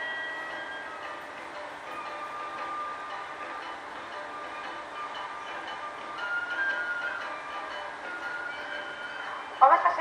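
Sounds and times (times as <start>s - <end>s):
high metallic squeals and whines of train: 0.0s - 9.9s
train rolling into station: 0.0s - 9.9s.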